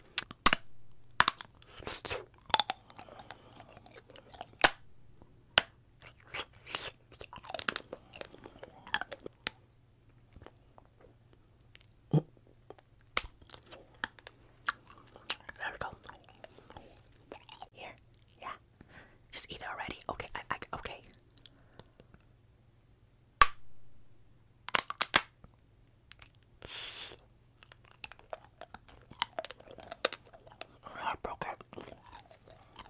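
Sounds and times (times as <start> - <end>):
low steady hum: 0.0 - 32.8
irregular smacks and crunchy clicks of chewing wax: 0.1 - 9.6, 12.6 - 18.3, 24.7 - 26.5, 27.6 - 32.8
wet chewing of a waxy gum-like piece: 1.1 - 4.8, 6.0 - 12.0, 12.6 - 18.4, 26.1 - 32.8
faint whispering: 15.1 - 18.6, 19.3 - 21.2, 30.6 - 32.8.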